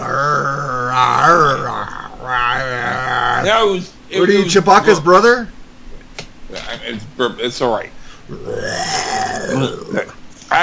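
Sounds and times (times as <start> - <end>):
long drawn-out croaky burp: 0.0 - 3.6, 8.3 - 10.1
short throaty vocal bursts: 0.0 - 3.8, 8.0 - 10.2
speech: 1.0 - 5.5, 6.9 - 10.6.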